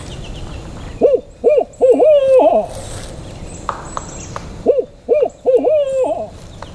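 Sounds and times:
person imitating owl hoots in the woods to call woodpeckers: 0:01.0 - 0:02.7, 0:04.6 - 0:06.3.

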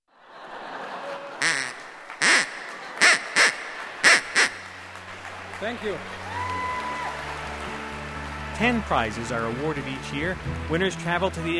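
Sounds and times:
laughter: 0:00.1 - 0:06.0
duck quacking in short nasal bursts: 0:01.4 - 0:04.8
speech: 0:05.6 - 0:06.2, 0:08.6 - 0:11.5.

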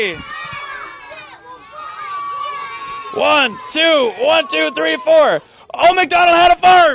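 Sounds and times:
speech: 0:00.0 - 0:00.4, 0:03.1 - 0:06.9
children making playful animal-like cries: 0:00.0 - 0:03.2
group of children cheering and shouting: 0:00.0 - 0:06.9.

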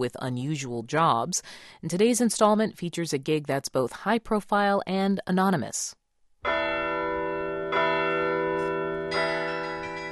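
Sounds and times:
speech: 0:00.0 - 0:06.6
carillon bells ringing in a tower: 0:06.5 - 0:10.1.

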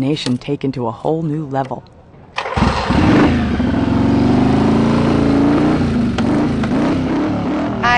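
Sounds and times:
speech: 0:00.0 - 0:02.0
motorcycle engine revving at a motorcycle rally: 0:02.4 - 0:07.9.

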